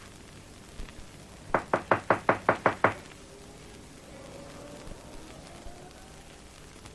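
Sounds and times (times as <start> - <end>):
knocking on the wooden front door of a house: 1.5 - 3.0.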